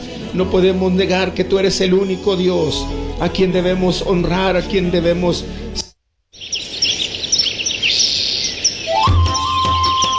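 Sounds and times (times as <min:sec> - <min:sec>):
speech: 0:00.3 - 0:05.6
busy chorus of small birds chirping and trilling: 0:06.4 - 0:10.1.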